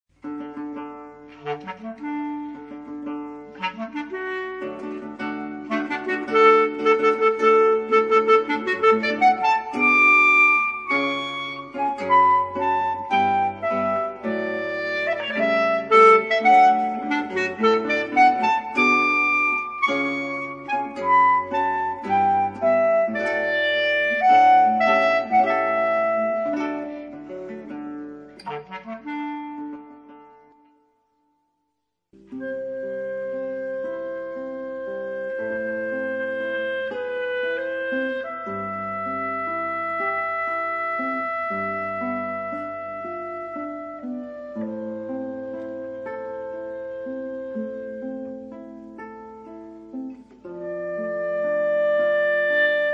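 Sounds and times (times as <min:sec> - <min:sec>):
clarinet: 0:00.1 - 0:31.2, 0:32.2 - 0:52.9
guitar: 0:00.1 - 0:52.9.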